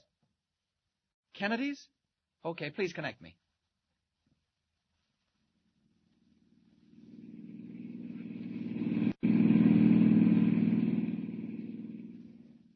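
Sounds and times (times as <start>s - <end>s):
speech: 1.4s - 3.4s
car engine driving past on a dusty road: 6.2s - 12.7s.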